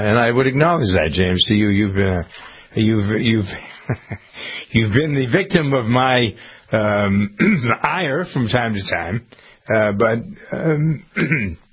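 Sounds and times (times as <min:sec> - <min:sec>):
speech: 0:00.0 - 0:11.6
person clearing throat: 0:07.3 - 0:07.8, 0:10.8 - 0:11.7.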